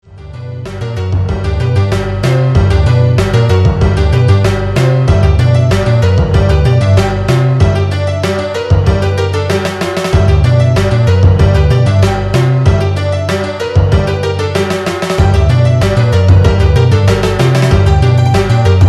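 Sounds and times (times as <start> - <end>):
honky tonk dumb drum: 0.7 - 18.8.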